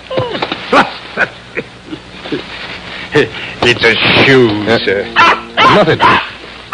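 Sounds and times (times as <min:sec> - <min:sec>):
speech: 0:03.2 - 0:06.3
small dog yipping and barking: 0:05.2 - 0:06.7.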